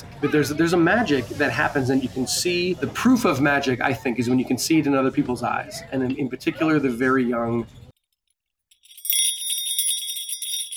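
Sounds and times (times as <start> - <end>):
speech: 0.2 - 7.8
jingle bell ringing: 8.7 - 10.7.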